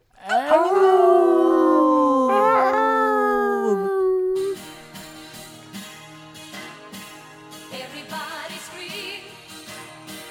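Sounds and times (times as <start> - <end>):
dog howling along to a song: 0.2 - 4.7
song playing: 2.3 - 3.6.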